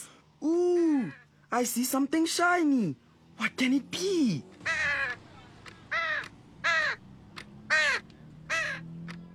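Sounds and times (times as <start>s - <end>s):
speech: 0.4s - 0.6s, 1.5s - 4.6s
bird cawing: 4.6s - 8.9s.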